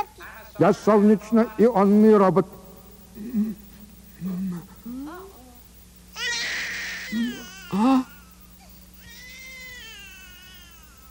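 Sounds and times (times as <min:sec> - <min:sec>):
steady low hum: 0:00.0 - 0:11.0
speech: 0:00.6 - 0:02.6
newborn baby boy wailing: 0:06.2 - 0:11.0.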